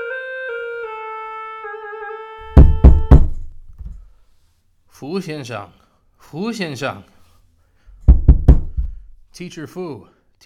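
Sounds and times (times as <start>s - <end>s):
knocking on a wooden door: 2.5s - 4.0s, 8.0s - 9.1s
speech: 5.0s - 7.2s, 9.4s - 10.4s.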